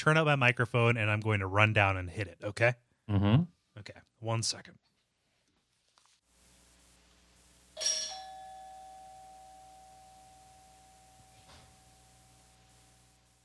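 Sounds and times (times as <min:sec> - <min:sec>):
speech: 0:00.0 - 0:04.8
doorbell chiming, pressed by a person: 0:07.8 - 0:13.2.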